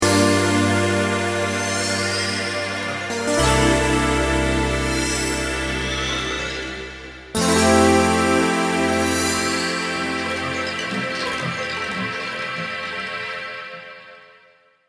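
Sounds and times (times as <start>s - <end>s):
electronic synthesizer sound: 0.0s - 14.5s.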